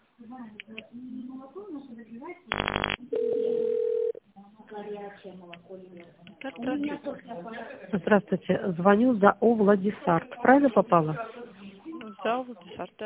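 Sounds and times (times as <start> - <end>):
speech: 0.3 - 4.1, 4.7 - 11.4, 12.2 - 13.0
telephone line tone while waiting on hold: 2.5 - 4.2.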